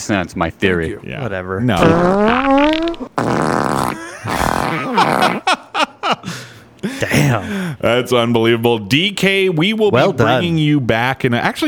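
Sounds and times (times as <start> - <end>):
speech: 0.0 - 3.2, 7.2 - 11.6
fart noises: 1.8 - 5.5
laughter: 3.8 - 7.7.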